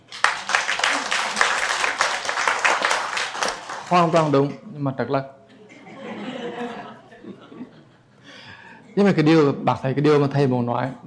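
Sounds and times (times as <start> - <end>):
audience applause at a Buddhist talk: 0.0 - 4.5
laughter: 0.4 - 4.6, 5.5 - 9.0
speech: 3.9 - 5.4, 9.0 - 11.0.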